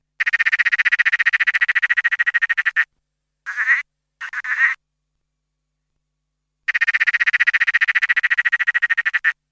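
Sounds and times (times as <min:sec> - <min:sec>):
Litoria peronii tree frog calling: 0:00.2 - 0:02.9, 0:03.5 - 0:04.8, 0:06.7 - 0:09.4.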